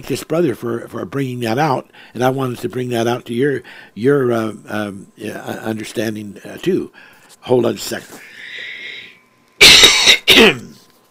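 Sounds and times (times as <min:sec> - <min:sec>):
speech: 0:00.0 - 0:08.4, 0:10.4 - 0:10.7
faint breathy hiss: 0:03.6 - 0:04.0, 0:06.9 - 0:07.4, 0:08.0 - 0:10.8
person coughing: 0:09.6 - 0:10.8.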